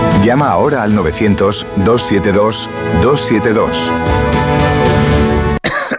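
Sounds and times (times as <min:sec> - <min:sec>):
speech: 0:00.2 - 0:04.8
person coughing harshly: 0:05.6 - 0:05.9.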